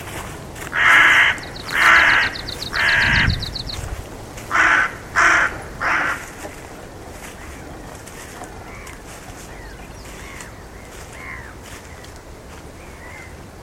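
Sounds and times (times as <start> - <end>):
rapid ticking: 0.7 - 8.7
bird cawing: 0.7 - 12.0, 12.8 - 13.4.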